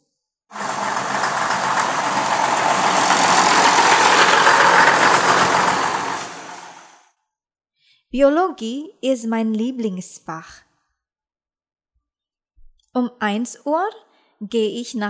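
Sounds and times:
large school bus engine idling: 0:00.6 - 0:07.0
speech: 0:08.1 - 0:10.6, 0:13.0 - 0:15.0.

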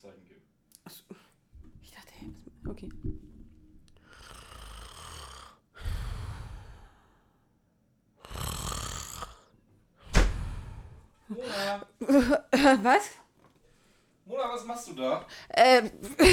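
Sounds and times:
person snoring while asleep sitting on a chair: 0:04.0 - 0:07.3, 0:08.2 - 0:09.5, 0:10.3 - 0:11.2
speech: 0:12.0 - 0:13.2, 0:14.6 - 0:16.3
laughter: 0:16.0 - 0:16.3.

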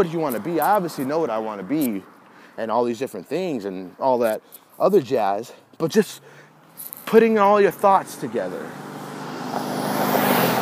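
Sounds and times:
speech: 0:00.0 - 0:06.4, 0:07.1 - 0:08.9
car speeding past on the street in front of a house: 0:07.7 - 0:10.6.

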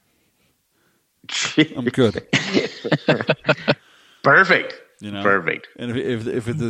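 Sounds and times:
sneeze: 0:01.3 - 0:01.8
speech: 0:01.6 - 0:06.6
laughter: 0:02.3 - 0:03.8.

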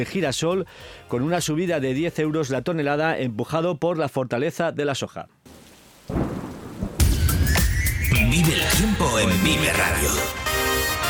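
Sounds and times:
speech: 0:00.0 - 0:05.4, 0:08.8 - 0:10.4
heavy rain: 0:05.5 - 0:07.6
low rumble of thunder: 0:06.1 - 0:09.1.

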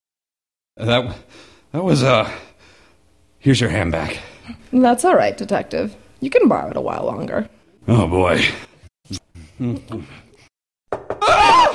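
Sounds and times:
speech: 0:00.8 - 0:02.5, 0:03.4 - 0:10.2
sharp knocks on a door: 0:10.9 - 0:11.3.

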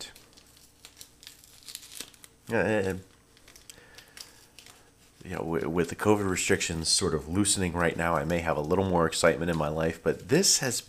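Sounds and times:
trading card pack wrapper crinkling: 0:00.0 - 0:10.8
pack of trading cards ripped open: 0:00.1 - 0:04.9
speech: 0:02.5 - 0:03.1, 0:05.3 - 0:10.8.

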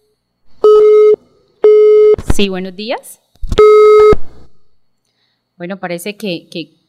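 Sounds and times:
telephone busy tone after the caller hung up: 0:00.6 - 0:02.2, 0:03.6 - 0:04.2
speech: 0:02.4 - 0:04.2, 0:05.6 - 0:06.8.

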